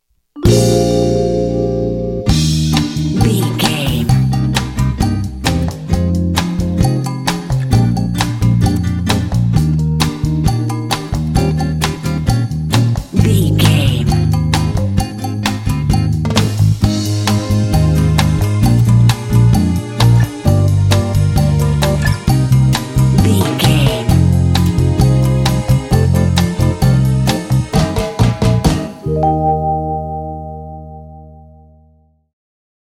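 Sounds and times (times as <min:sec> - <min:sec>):
quirky comedy cha cha music: 0:00.4 - 0:30.5.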